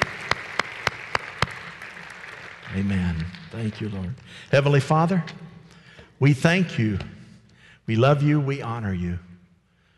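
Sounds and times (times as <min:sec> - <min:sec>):
congregation clapping in unison: 0:00.0 - 0:04.5
speech: 0:02.7 - 0:05.5, 0:06.2 - 0:07.2, 0:07.9 - 0:09.3.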